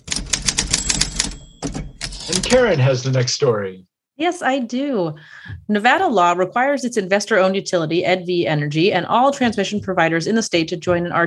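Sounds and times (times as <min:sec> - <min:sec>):
typewriter keys clacking: 0:00.0 - 0:02.6
speech: 0:02.3 - 0:11.2.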